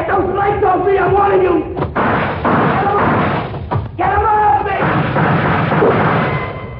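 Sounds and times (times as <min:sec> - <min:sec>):
speech: 0:00.2 - 0:02.6
loud booming gunshot sound effect in a radio drama: 0:01.9 - 0:03.6, 0:04.8 - 0:06.6.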